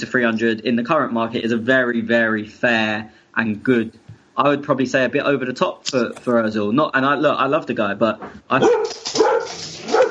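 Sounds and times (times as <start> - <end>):
speech: 0.0 - 9.3
dog barking: 8.6 - 10.0.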